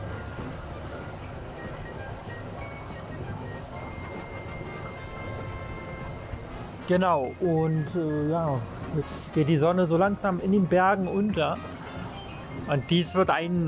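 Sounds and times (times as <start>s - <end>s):
gurgling water in the mountains: 0.0s - 13.6s
speech: 6.9s - 11.8s, 12.7s - 13.6s.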